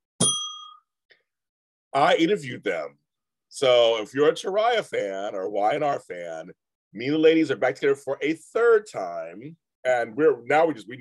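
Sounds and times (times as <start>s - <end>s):
bell ringing: 0.2s - 0.9s
speech: 2.0s - 10.9s.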